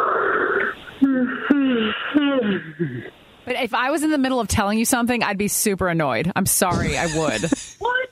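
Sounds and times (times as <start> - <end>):
person yawning: 1.0 - 3.1
speech: 2.6 - 7.8.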